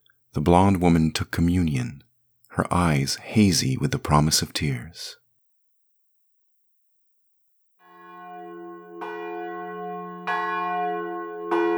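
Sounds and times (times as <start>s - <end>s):
speech: 0.4s - 2.0s, 2.6s - 5.2s
abbey church bells ringing: 7.8s - 11.7s.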